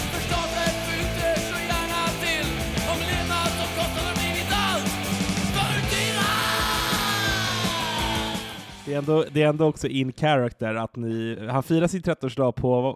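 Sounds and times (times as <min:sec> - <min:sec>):
loud dense rock music with pounding drums and distorted guitars: 0:00.0 - 0:09.6
raw strained rock vocal rising into a sustained scream: 0:02.9 - 0:08.9
speech: 0:09.0 - 0:12.9.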